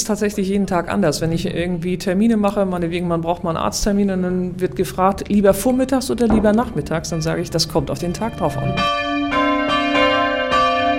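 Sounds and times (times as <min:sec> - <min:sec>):
speech: 0:00.0 - 0:09.0
church bells ringing: 0:05.6 - 0:10.9.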